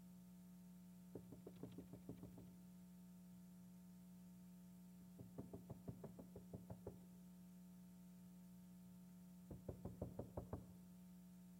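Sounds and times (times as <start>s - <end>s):
steady low electrical hum: 0.0s - 11.5s
firm knocking on a door: 1.1s - 2.5s, 5.2s - 7.0s, 9.5s - 10.7s.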